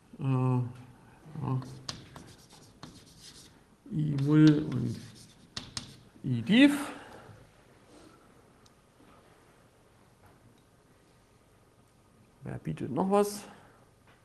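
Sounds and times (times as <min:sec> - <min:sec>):
writing on a board during a lecture: 0:01.5 - 0:06.1
speech: 0:06.4 - 0:07.0, 0:12.6 - 0:13.6.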